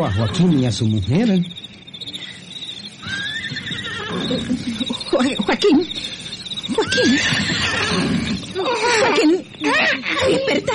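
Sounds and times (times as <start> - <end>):
horse neighing insistently: 0.0 - 0.7, 3.0 - 4.7, 6.7 - 10.4
speech: 0.0 - 1.7, 4.2 - 10.7.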